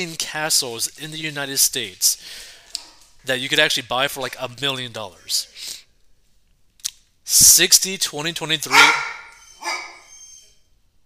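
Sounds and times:
speech: 0.0 - 2.5, 3.2 - 5.8, 7.3 - 9.1
dog bark: 8.7 - 10.1.

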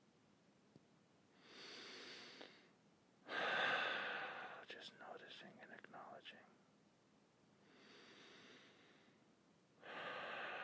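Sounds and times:
slow deliberate mindful breathing: 1.4 - 4.7, 7.6 - 9.2, 9.8 - 10.6.

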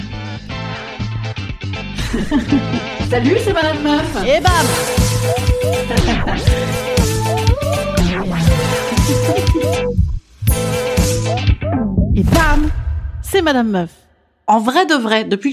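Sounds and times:
laughter: 2.0 - 3.3, 5.5 - 7.0, 8.5 - 9.9
speech: 2.1 - 7.2, 9.1 - 10.0, 12.2 - 15.5
upbeat instrumental theme jingle with thumping bass beat: 4.2 - 12.2.

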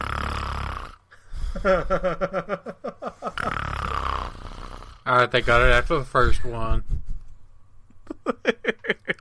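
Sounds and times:
voice imitating loud snoring: 0.0 - 1.1, 3.2 - 5.8
laughter: 1.6 - 3.4, 8.0 - 9.2
speech: 1.6 - 3.7, 5.0 - 7.0.

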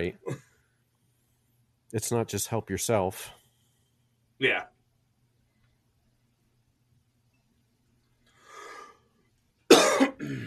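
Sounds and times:
speech: 0.0 - 0.3, 1.9 - 3.4, 4.4 - 4.7
person coughing: 0.2 - 0.6, 9.7 - 10.4
soft breath: 3.3 - 4.2, 8.3 - 9.2.

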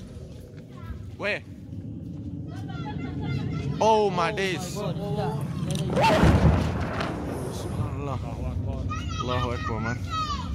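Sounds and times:
outdoor noise: 0.0 - 10.5
speech: 1.2 - 1.6, 3.8 - 6.5, 8.1 - 10.3
airstrike bombing explosions booming: 5.4 - 8.9.

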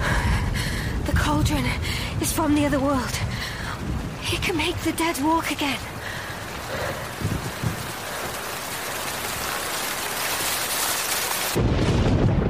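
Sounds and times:
heavy rain from a storm over a bay: 0.0 - 12.4
speech: 1.3 - 3.3, 4.3 - 5.9.

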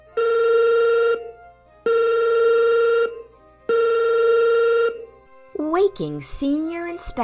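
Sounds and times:
telephone ringing in a quiet house: 0.1 - 5.1
speech: 5.9 - 7.2.

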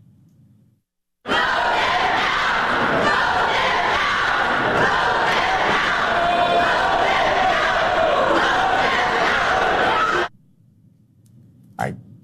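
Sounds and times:
angry crowd shouting during a near-fight on the Tennessee State Assembly floor: 1.3 - 10.3.

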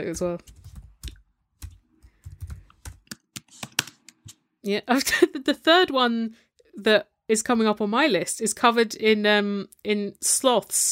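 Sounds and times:
speech: 0.0 - 0.6, 4.6 - 10.9
keystrokes clattering on a computer keyboard: 0.0 - 4.3.

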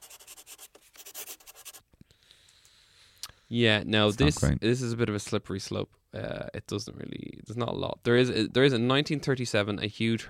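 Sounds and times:
pen or pencil scratching on paper while writing: 0.0 - 1.8
speech: 3.5 - 10.2.

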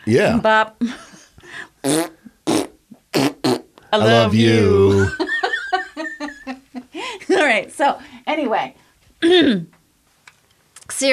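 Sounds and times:
speech: 0.0 - 1.0, 1.8 - 2.1, 3.9 - 5.3, 7.4 - 9.7
loud buzzy fart blasts with softer sputters: 1.8 - 3.8
laughter: 4.0 - 6.9.

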